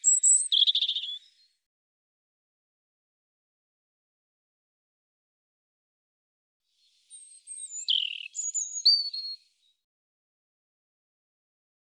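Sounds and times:
European robin song: 0:00.0 - 0:01.5, 0:06.8 - 0:09.7.

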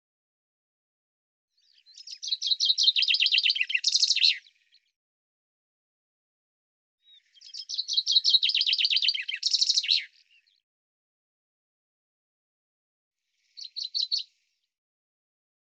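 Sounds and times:
Common chaffinch singing trilled phrases: 0:01.6 - 0:04.8, 0:07.0 - 0:10.6, 0:13.4 - 0:14.3.

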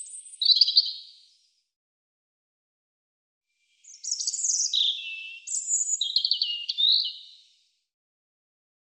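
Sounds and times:
European robin singing: 0:00.0 - 0:01.3, 0:03.8 - 0:07.6.

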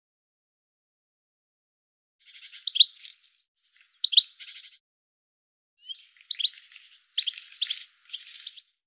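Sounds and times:
bird giving bursts of sharp high chirps: 0:02.2 - 0:04.8, 0:05.8 - 0:08.8.

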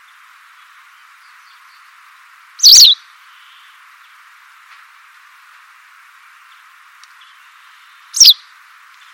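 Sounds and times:
steady hiss: 0:00.0 - 0:09.1
white wagtail chirps: 0:02.6 - 0:03.0, 0:08.2 - 0:08.4.

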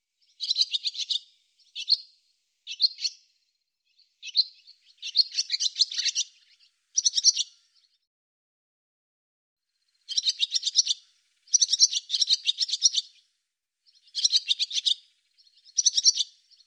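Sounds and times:
barn swallow twittering: 0:00.2 - 0:03.3, 0:03.9 - 0:08.0, 0:09.9 - 0:13.2, 0:13.9 - 0:16.6.

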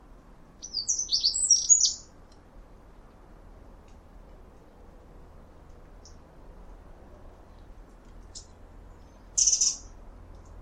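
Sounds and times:
low background hum: 0:00.0 - 0:10.6
birds chirping and twittering: 0:00.6 - 0:02.2, 0:08.2 - 0:10.0.

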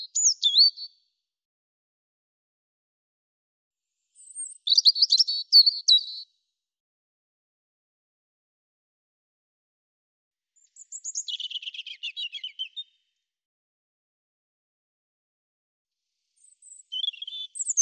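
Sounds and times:
European robin song with thin whistles and tinkling notes: 0:00.0 - 0:01.0, 0:04.2 - 0:06.3, 0:10.6 - 0:13.1, 0:16.4 - 0:17.8.

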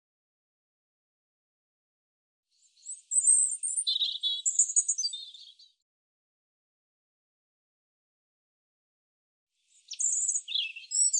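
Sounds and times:
European robin singing: 0:02.6 - 0:05.8, 0:09.7 - 0:11.1.

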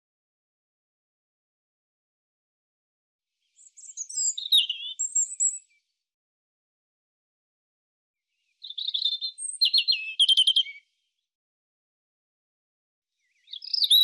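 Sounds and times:
European robin singing: 0:03.4 - 0:06.0, 0:08.3 - 0:11.1, 0:13.2 - 0:14.0.

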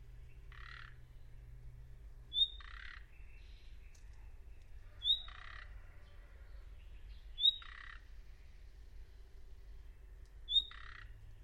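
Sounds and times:
bird calling with high note and buzzy squawk: 0:00.3 - 0:01.0, 0:02.3 - 0:04.3, 0:04.9 - 0:05.9, 0:07.4 - 0:08.1, 0:10.5 - 0:11.1.

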